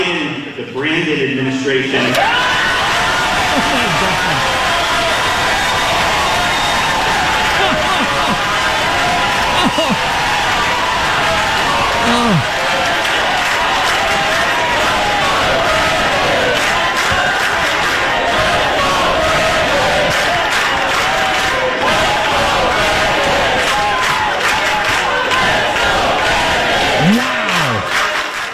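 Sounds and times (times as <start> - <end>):
speech: 0.6 - 2.8, 3.6 - 4.6
large crowd cheering, shouting and whooping: 2.0 - 28.5
laughter: 3.0 - 5.1, 7.3 - 10.4, 11.9 - 12.6, 26.4 - 28.4
individual yells: 12.0 - 12.5, 27.0 - 27.9.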